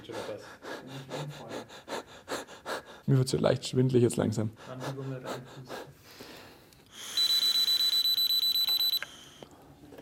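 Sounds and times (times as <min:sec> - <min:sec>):
person hyperventilating on purpose with quick forced breaths: 0:00.0 - 0:03.1, 0:04.5 - 0:07.2
speech: 0:03.1 - 0:05.8.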